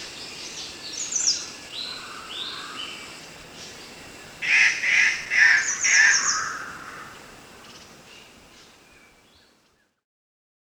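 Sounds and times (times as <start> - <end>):
steady background hiss: 0.0 - 10.0
Bornean treepie calls: 4.4 - 7.2.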